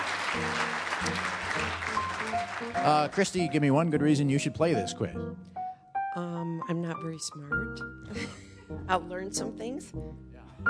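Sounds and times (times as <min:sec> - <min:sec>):
game show audience applauding: 0:00.0 - 0:04.2
speech: 0:02.7 - 0:05.5, 0:06.1 - 0:10.6.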